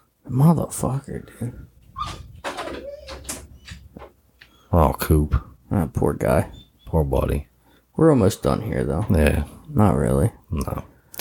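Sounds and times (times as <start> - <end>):
speech: 0.3 - 2.2, 4.7 - 10.9
pet scrabbling and pushing against a door: 1.9 - 4.2.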